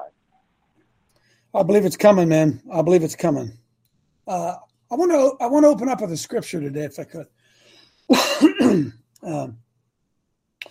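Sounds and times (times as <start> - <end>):
speech: 1.5 - 3.6, 4.3 - 7.4, 8.1 - 9.6
harsh rasping throat-clearing coughs: 8.1 - 9.0.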